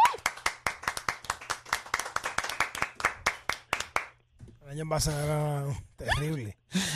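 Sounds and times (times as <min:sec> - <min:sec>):
energetic applause from a small group: 0:00.0 - 0:04.2
speech: 0:04.7 - 0:06.9.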